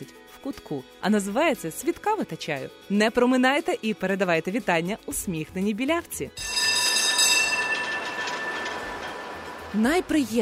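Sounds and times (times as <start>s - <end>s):
speech: 0.4s - 6.6s, 9.7s - 10.4s
tram metallic grind: 6.4s - 10.4s
tram rumbling along city rails in Lviv Ukraine: 6.4s - 10.4s.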